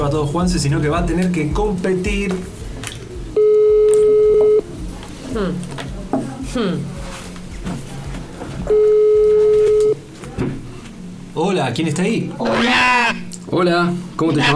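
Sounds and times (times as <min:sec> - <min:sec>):
speech: 0:00.0 - 0:02.6, 0:05.3 - 0:05.8, 0:06.5 - 0:07.0, 0:11.4 - 0:14.5
incoming telephone call tones on a call-in line: 0:03.4 - 0:04.7, 0:08.7 - 0:10.0.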